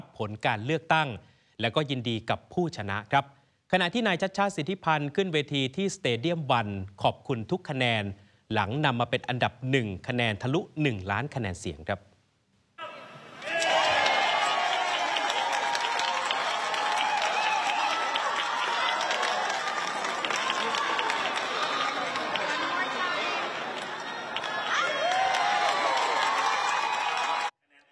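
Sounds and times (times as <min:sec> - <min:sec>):
speech: 0:00.2 - 0:12.1
people shouting: 0:12.8 - 0:26.2
crowd cheering in celebration at a stadium stage after election win: 0:12.8 - 0:27.6.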